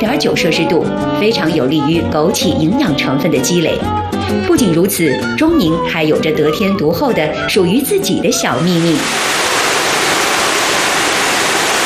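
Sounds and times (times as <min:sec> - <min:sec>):
speech: 0:00.0 - 0:09.4
rushing water pouring over a river waterfall: 0:08.8 - 0:11.8.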